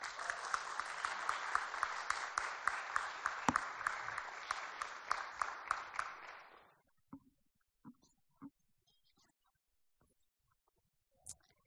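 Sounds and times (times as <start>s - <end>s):
roomful of people applauding: 0.0s - 6.7s.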